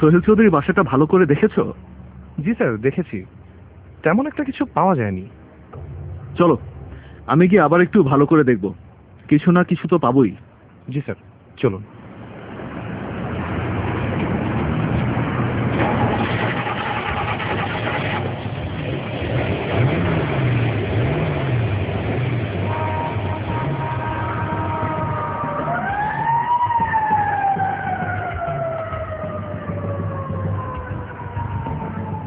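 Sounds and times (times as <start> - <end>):
speech: 0.0 - 3.4, 4.0 - 5.8, 6.4 - 11.9
police car engine rumble driving off from a police station: 0.0 - 9.3, 10.4 - 32.2
police car siren wailing: 22.7 - 32.2.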